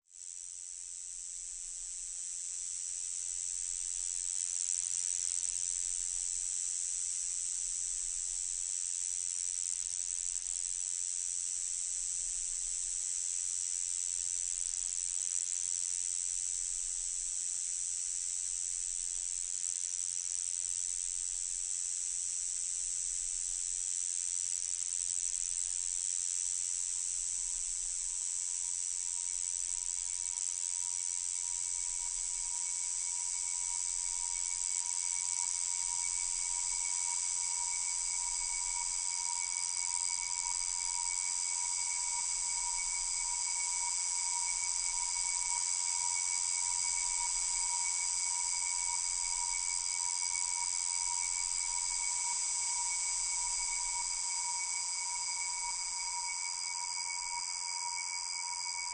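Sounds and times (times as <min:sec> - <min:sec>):
faint cicada: 0:00.0 - 0:58.9.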